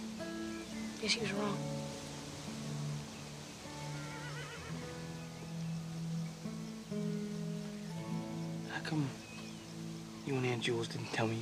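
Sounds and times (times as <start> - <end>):
steady breezy hiss: 0.0 - 11.3
speech: 1.0 - 1.8, 8.9 - 9.2, 10.3 - 11.3
several wild horses neighing and whinnying across an open outdoor space: 3.8 - 5.3.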